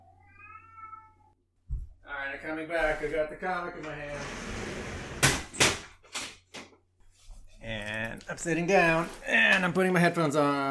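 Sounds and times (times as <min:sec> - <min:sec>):
cat meowing: 0:00.0 - 0:01.4
speech: 0:02.3 - 0:04.8, 0:07.6 - 0:10.6.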